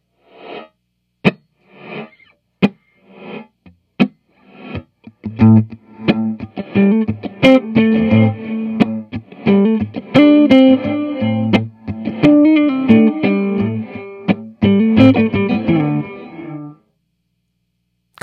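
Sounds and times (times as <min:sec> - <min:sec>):
heavily effected bass riff: 0:04.6 - 0:16.7.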